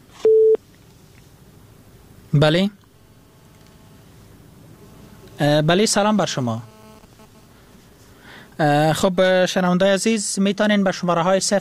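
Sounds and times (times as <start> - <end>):
telephone busy tone beep after a dropped call: 0.2 - 0.6
speech: 2.3 - 2.8, 5.4 - 6.7, 8.6 - 11.5.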